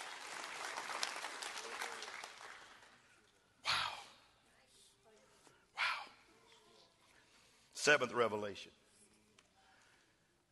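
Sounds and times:
audience clapping hands: 0:00.0 - 0:03.2
speech: 0:07.8 - 0:08.8.

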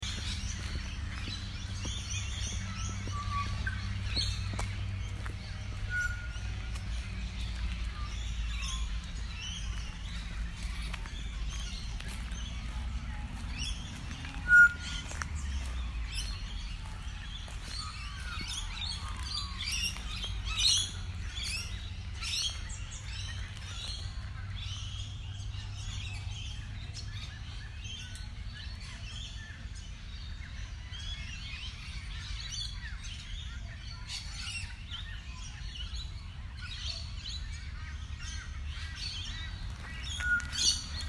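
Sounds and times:
steady low rumble: 0:00.0 - 0:27.5
small birds chirping and tweeting: 0:00.0 - 0:41.0.

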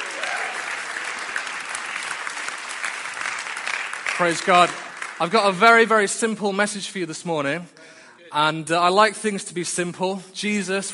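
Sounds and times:
audience applause: 0:00.0 - 0:05.9
speech: 0:04.2 - 0:10.9.

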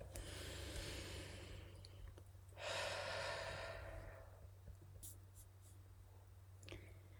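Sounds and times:
low steady hum: 0:00.0 - 0:07.1
deep breath in through the nose and out through the mouth: 0:00.1 - 0:01.8, 0:02.6 - 0:04.4.

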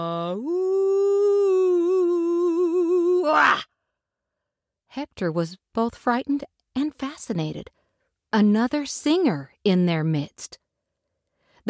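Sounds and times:
speech: 0:00.0 - 0:00.7, 0:04.9 - 0:10.6
human voice imitating a dingo howling: 0:00.0 - 0:03.7.

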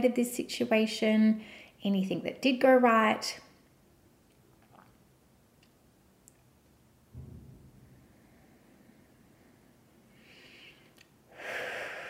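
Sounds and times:
speech: 0:00.0 - 0:03.4
low puff of air: 0:07.2 - 0:12.0
deep breathing: 0:07.9 - 0:12.0.

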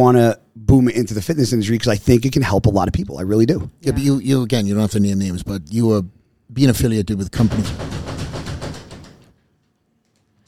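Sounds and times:
speech: 0:00.0 - 0:08.0
heavy loud bangs on a door: 0:07.3 - 0:09.3.

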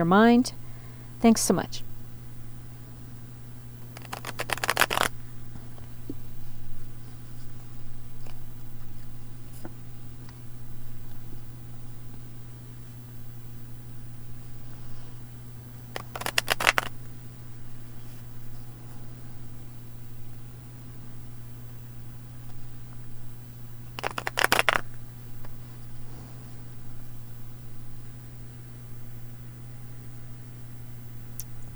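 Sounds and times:
speech: 0:00.0 - 0:00.6, 0:01.2 - 0:01.9
steady low electrical hum: 0:00.0 - 0:31.7
tarot cards being shuffled: 0:03.8 - 0:05.2, 0:15.9 - 0:16.9, 0:24.0 - 0:25.0.

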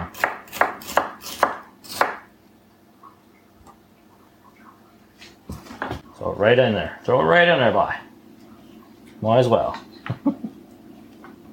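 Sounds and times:
knife slicing vegetables for a food processor: 0:00.0 - 0:02.3
speech: 0:06.4 - 0:08.1, 0:09.2 - 0:10.4.

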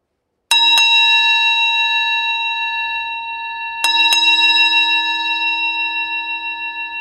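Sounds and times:
small hand bell ringing: 0:00.5 - 0:06.9.

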